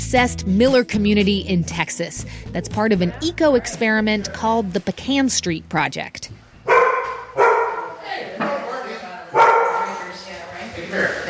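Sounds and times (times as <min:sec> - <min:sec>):
speech: 0:00.0 - 0:06.4
dog barking: 0:06.6 - 0:08.0, 0:09.3 - 0:10.1.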